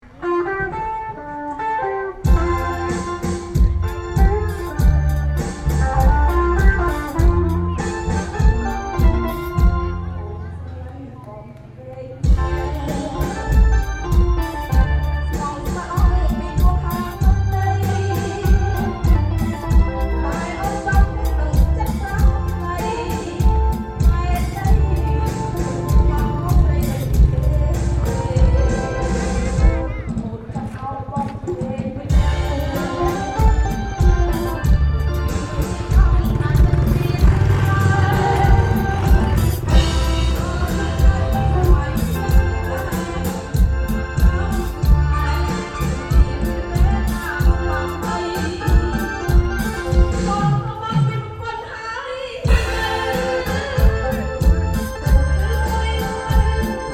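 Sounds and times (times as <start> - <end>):
party band playing in Cambodia: 0.0 - 10.6, 12.2 - 51.7, 52.3 - 56.9.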